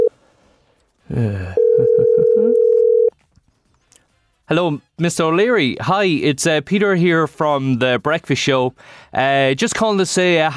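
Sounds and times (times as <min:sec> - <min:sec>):
speech: 0:01.1 - 0:02.7, 0:04.5 - 0:10.5
loud steady international telephone dial tone: 0:01.6 - 0:03.1.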